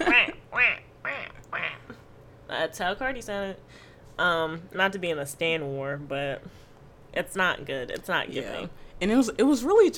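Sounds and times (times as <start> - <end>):
voice imitating duck quacks: 0.0 - 2.0
speech: 2.5 - 9.9.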